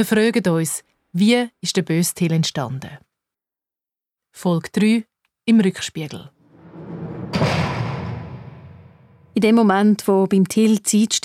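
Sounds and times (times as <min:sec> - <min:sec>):
speech: 0:00.0 - 0:03.1, 0:04.4 - 0:06.4, 0:09.4 - 0:11.2
heavy metal prison cell door slamming shut: 0:06.4 - 0:09.4.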